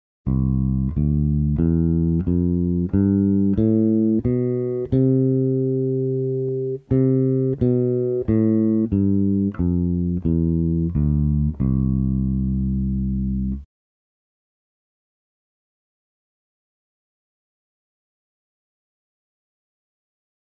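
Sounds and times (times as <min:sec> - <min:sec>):
bass playing a one-octave major scale: 0:00.3 - 0:13.7.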